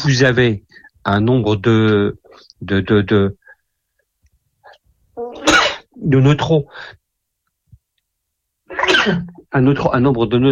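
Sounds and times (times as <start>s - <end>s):
speech: 0.0s - 3.4s, 6.0s - 7.0s, 8.7s - 10.5s
person sneezing: 5.4s - 5.9s, 8.7s - 9.3s.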